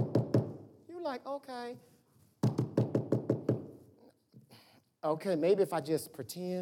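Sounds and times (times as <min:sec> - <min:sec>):
firm knocks on a door: 0:00.0 - 0:00.6, 0:02.4 - 0:03.7
speech: 0:01.1 - 0:01.9, 0:05.0 - 0:06.6.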